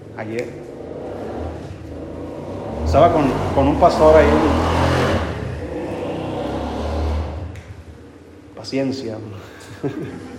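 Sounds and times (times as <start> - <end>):
motorcycle engine revving: 0.0 - 8.6
speech: 0.2 - 0.8, 2.9 - 4.8, 8.6 - 10.3
laughter: 9.3 - 10.3.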